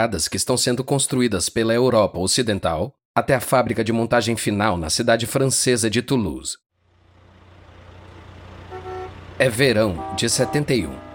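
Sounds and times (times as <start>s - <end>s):
speech: 0.0s - 6.7s, 9.4s - 11.1s
traffic rumble and engine noise in a traffic jam outside Toulouse: 6.8s - 11.1s
Renault car horn honk: 8.6s - 11.1s.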